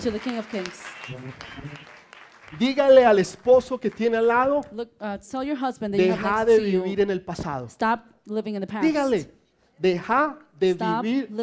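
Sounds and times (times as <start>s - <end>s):
speech: 0.0s - 1.9s, 2.5s - 11.4s
church audience applauding: 0.0s - 4.5s.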